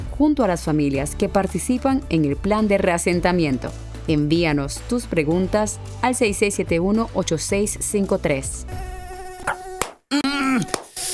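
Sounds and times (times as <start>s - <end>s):
speech: 0.2s - 9.6s, 10.6s - 10.8s
Aedes aegypti mosquito buzzing: 8.6s - 9.8s.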